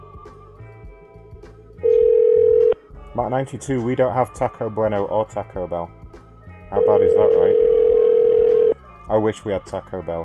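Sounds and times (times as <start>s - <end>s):
telephone ringback tone on an outgoing call to a cell phone: 1.8s - 2.8s, 6.8s - 8.8s
speech: 3.2s - 6.0s, 6.9s - 7.6s, 9.1s - 10.2s.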